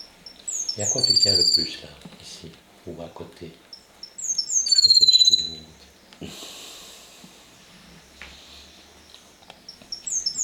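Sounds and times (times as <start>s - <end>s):
pet bird chirping: 0.0s - 2.4s, 3.5s - 6.3s, 7.9s - 10.4s
faint noise: 0.0s - 10.4s
speech: 0.8s - 3.7s.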